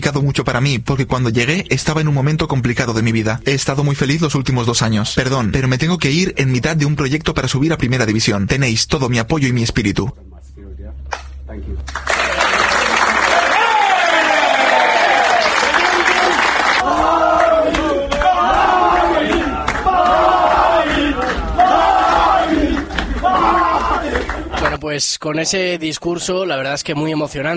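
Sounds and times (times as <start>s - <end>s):
speech: 0.0s - 12.7s, 24.9s - 27.5s
football teammates applauding in a locker room: 11.9s - 24.8s
football teammates cheering and shouting in a locker room: 12.2s - 24.8s
football teammates chanting rhythmically: 15.9s - 24.8s.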